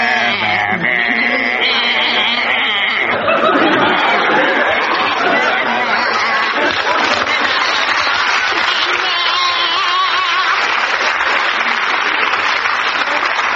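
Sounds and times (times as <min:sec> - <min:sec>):
two people singing a song in bleating sheep-like baa sounds: 0:00.0 - 0:11.0
lively audience laughing: 0:00.0 - 0:13.5
lively audience clapping: 0:03.6 - 0:13.5.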